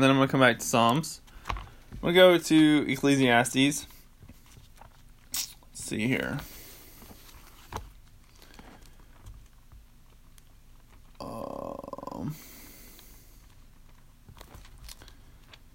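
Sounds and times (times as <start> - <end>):
speech: 0.0 - 1.2, 2.0 - 4.0, 5.9 - 6.5
person belching: 11.2 - 12.4.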